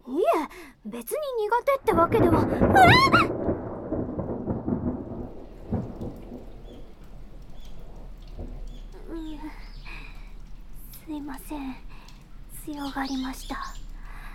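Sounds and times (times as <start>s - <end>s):
heavy rain pouring down: 0.1s - 14.3s
speech: 0.8s - 3.4s, 12.7s - 13.8s
deep roll of thunder: 1.1s - 9.6s.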